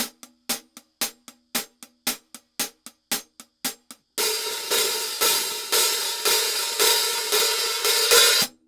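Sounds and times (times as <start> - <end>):
hi-hats: 0.0 - 8.6
cymbals: 4.2 - 8.6.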